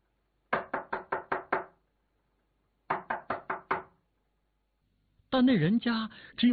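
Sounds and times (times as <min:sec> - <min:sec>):
firm knocking on the door of a roadside house: 0:00.5 - 0:01.8, 0:02.9 - 0:04.0
speech: 0:05.3 - 0:06.5.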